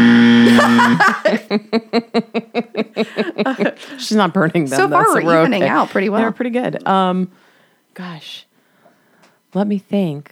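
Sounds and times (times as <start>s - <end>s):
loud flat game show buzzer tone: 0.0s - 1.1s
rapid rhythmic chuckling bursts: 0.3s - 4.2s
speech: 1.0s - 2.4s, 3.0s - 7.4s, 8.0s - 8.5s, 9.5s - 10.3s.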